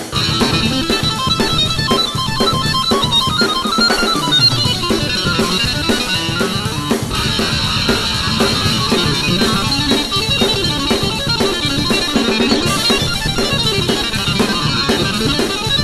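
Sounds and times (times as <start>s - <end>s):
metal music session: 0.1s - 15.8s.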